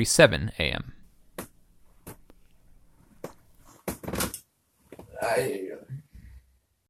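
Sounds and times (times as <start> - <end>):
speech: 0.0 - 1.0, 5.3 - 5.6
bed creaking and knocking as someone shifts and turns: 0.8 - 4.4.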